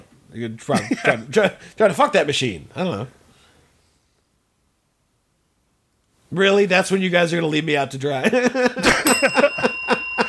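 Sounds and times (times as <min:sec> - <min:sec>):
speech: 0:00.4 - 0:03.2, 0:06.3 - 0:09.5
laughter: 0:00.7 - 0:01.3, 0:08.2 - 0:10.2
bright high bell ringing: 0:08.8 - 0:10.2.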